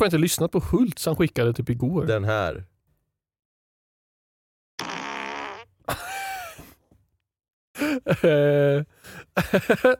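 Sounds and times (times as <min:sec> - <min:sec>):
speech: 0:00.0 - 0:02.7, 0:08.0 - 0:09.9
recording of farts played back: 0:04.8 - 0:05.8
laughter: 0:07.8 - 0:08.8, 0:09.4 - 0:09.9.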